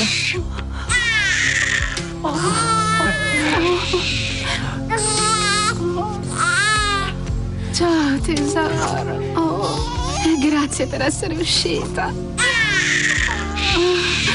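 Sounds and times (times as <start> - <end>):
newborn baby girl crying just after birth: 0.0 - 7.2, 9.6 - 11.1, 12.4 - 14.3
speech: 8.2 - 9.4, 10.4 - 12.5.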